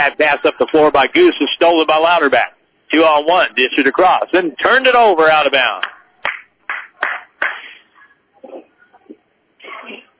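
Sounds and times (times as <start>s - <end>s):
speech: 0.0s - 6.0s
single person clapping hands at a college basketball game: 5.8s - 7.8s.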